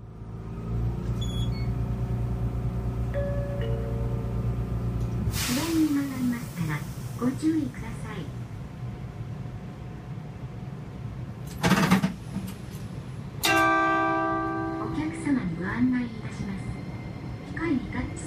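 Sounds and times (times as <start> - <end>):
low-floor city tram motor hum: 0.0 - 18.2
tram wheel squeal: 1.1 - 1.8
tram air hiss: 5.2 - 7.2
recorded announcement voice inside a low-floor city tram: 5.5 - 8.4, 14.7 - 16.8
speech: 5.9 - 8.4.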